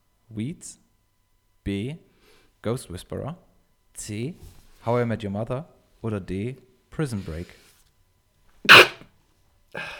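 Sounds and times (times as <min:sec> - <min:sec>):
speech: 0:00.3 - 0:00.9, 0:01.6 - 0:07.6
sneeze: 0:08.7 - 0:09.0.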